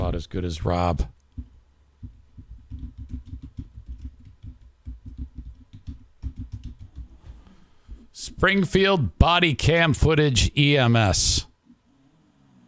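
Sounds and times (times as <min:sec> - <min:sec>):
speech: 0:00.2 - 0:01.2, 0:08.3 - 0:11.5
fingers typing on a computer keyboard: 0:02.7 - 0:07.1.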